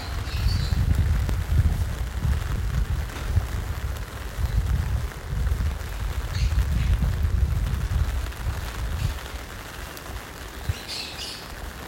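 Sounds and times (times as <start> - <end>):
winter rain drumming on an umbrella: 0.0 - 11.8
bird chirps: 10.7 - 11.5.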